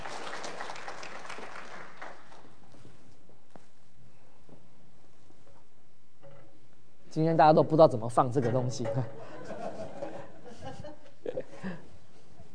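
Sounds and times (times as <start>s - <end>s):
crowd at a Christian church gathering applauding after a prayer: 0.0s - 2.6s
light noise: 0.0s - 12.5s
speech: 7.1s - 9.6s
laughter: 9.1s - 12.5s.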